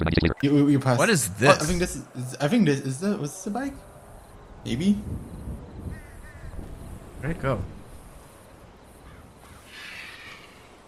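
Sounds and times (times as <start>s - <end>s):
speech: 0.0s - 3.9s, 4.6s - 5.4s, 7.2s - 7.8s
steady hiss: 0.4s - 10.8s
crow cawing: 5.9s - 6.7s, 9.0s - 10.8s.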